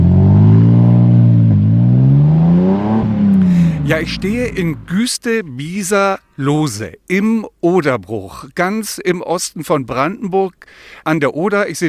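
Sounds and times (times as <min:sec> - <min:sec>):
car engine revving and accelerating: 0:00.0 - 0:04.9
speech: 0:03.9 - 0:11.8.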